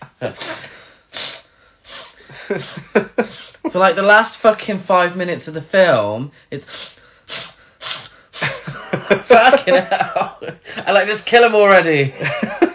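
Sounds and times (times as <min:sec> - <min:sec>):
speech: 0:00.2 - 0:00.7, 0:02.5 - 0:07.0, 0:09.0 - 0:12.6
person imitating sniffling: 0:00.2 - 0:03.7, 0:06.6 - 0:08.7
laughter: 0:02.3 - 0:03.8, 0:08.4 - 0:10.8, 0:12.2 - 0:12.7.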